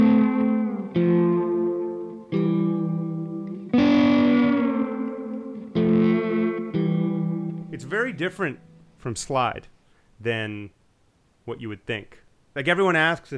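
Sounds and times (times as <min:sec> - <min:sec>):
sustained instrument chords with heavy added reverb and effects: 0:00.0 - 0:08.9
speech: 0:08.0 - 0:10.8, 0:11.5 - 0:13.3.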